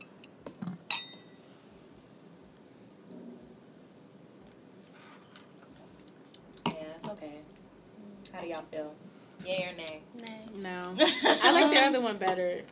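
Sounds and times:
wine glasses clinking in a toast: 0:00.9 - 0:01.4
speech: 0:08.4 - 0:12.6.

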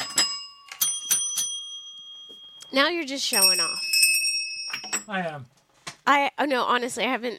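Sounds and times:
small bells ringing: 0:00.0 - 0:05.4
speech: 0:02.7 - 0:03.9, 0:04.8 - 0:07.3.

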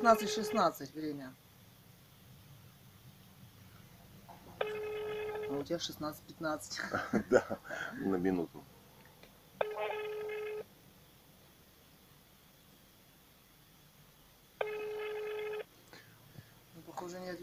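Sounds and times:
telephone ringing tones: 0:00.0 - 0:00.8, 0:04.6 - 0:05.8, 0:09.6 - 0:10.7, 0:14.6 - 0:15.7
speech: 0:00.0 - 0:01.4, 0:05.5 - 0:08.8
telephone dialing tones: 0:04.6 - 0:05.6, 0:09.6 - 0:10.7, 0:14.6 - 0:15.7
laughter: 0:06.8 - 0:08.1.

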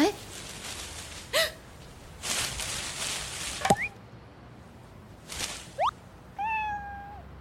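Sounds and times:
soft rustling: 0:00.1 - 0:03.9, 0:04.7 - 0:06.0
cat meowing: 0:06.3 - 0:07.3.

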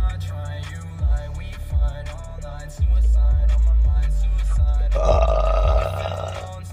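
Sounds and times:
speech: 0:00.2 - 0:00.8, 0:01.7 - 0:05.3
loud drawn-out burp: 0:05.0 - 0:06.5.

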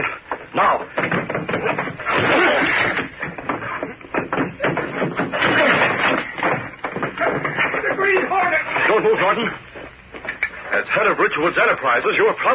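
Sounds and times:
banging on an old wooden door of a boathouse being forced open: 0:00.6 - 0:09.5
speech: 0:11.3 - 0:12.5.

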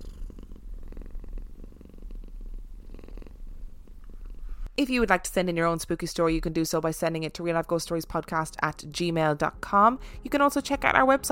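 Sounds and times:
cat purring: 0:00.0 - 0:04.8
speech: 0:04.8 - 0:11.3.

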